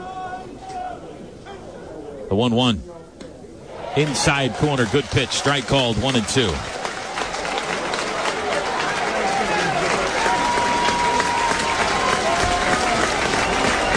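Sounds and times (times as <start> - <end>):
speech: 2.3 - 3.0, 4.0 - 6.7
large baseball stadium crowd cheering and clapping: 3.8 - 13.9
thin whistles from a baseball stadium crowd: 13.2 - 13.9.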